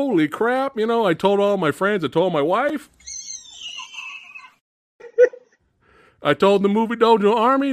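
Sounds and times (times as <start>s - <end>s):
speech: 0.0s - 3.1s, 6.2s - 7.7s
high-pitched excited squeal: 3.0s - 4.6s.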